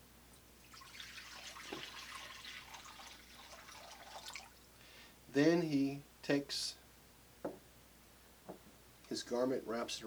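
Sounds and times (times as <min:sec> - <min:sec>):
water pouring from a pitcher into a bowl: 0:00.6 - 0:04.7
speech: 0:05.4 - 0:06.8, 0:09.3 - 0:10.0.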